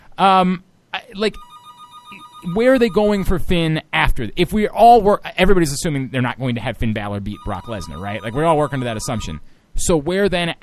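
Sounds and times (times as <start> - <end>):
speech: 0.2 - 1.5, 2.4 - 10.6
telephone ringing with a steady electronic tone: 1.3 - 3.2, 7.3 - 9.4.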